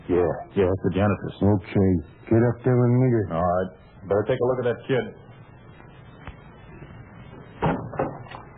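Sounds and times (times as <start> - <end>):
quiet room hum: 0.0 - 8.5
speech: 0.1 - 5.2
door swinging and shutting with a solid thud: 7.6 - 8.3.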